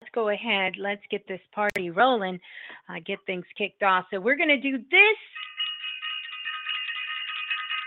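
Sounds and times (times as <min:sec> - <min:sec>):
speech: 0:00.2 - 0:05.5
bell ringing: 0:05.3 - 0:07.8.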